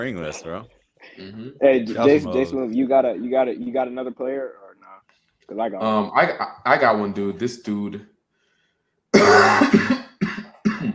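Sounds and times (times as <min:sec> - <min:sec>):
speech: 0:00.0 - 0:04.6, 0:05.5 - 0:08.1
person coughing: 0:09.2 - 0:10.9.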